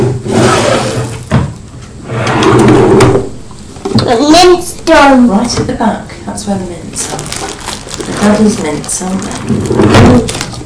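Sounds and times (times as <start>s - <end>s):
drawers being pulled open and pushed shut at home: 0.0s - 3.7s
speech: 4.1s - 10.5s.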